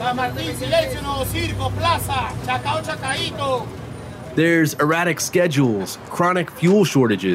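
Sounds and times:
bus fare collectors calling out stops from bus doors: 0:00.0 - 0:03.8
roadside street traffic: 0:00.0 - 0:07.3
speech: 0:00.1 - 0:03.8, 0:04.4 - 0:07.3.

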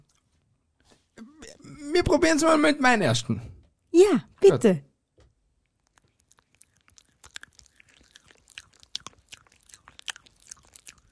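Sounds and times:
person chewing a crunchy cookie: 0:00.0 - 0:00.4, 0:05.6 - 0:11.1
speech: 0:01.8 - 0:04.9.

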